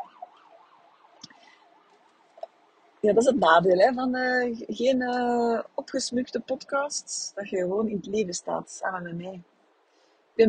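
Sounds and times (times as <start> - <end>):
emergency vehicle siren warbling: 0.0 - 2.3
speech: 3.0 - 9.5.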